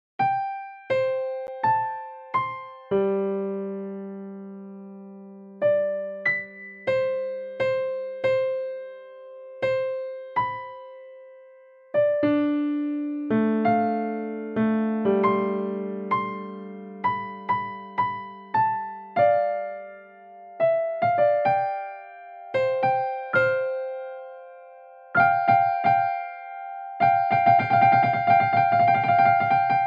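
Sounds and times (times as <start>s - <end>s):
virtual piano: 0.2s - 29.8s.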